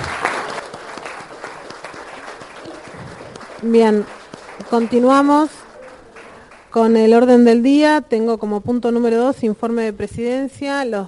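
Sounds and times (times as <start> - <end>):
group applauding at a council session: 0.0 - 7.2
speech: 3.6 - 5.6, 6.8 - 11.0.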